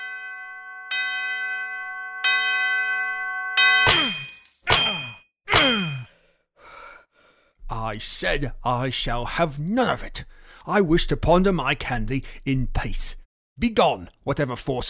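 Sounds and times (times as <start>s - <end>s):
old disused bell swinging and ringing: 0.0s - 6.0s
speech: 7.8s - 14.8s.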